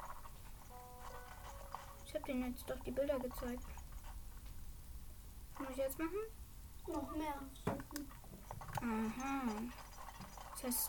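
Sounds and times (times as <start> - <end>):
horse hooves clip-clopping: 0.0 - 4.6, 8.2 - 10.8
speech: 2.2 - 3.8, 5.6 - 8.2, 8.8 - 9.8, 10.6 - 10.8.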